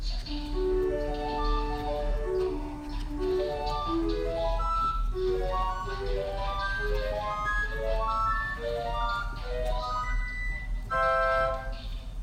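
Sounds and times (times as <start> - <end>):
harmonic flute: 0.2 - 12.1.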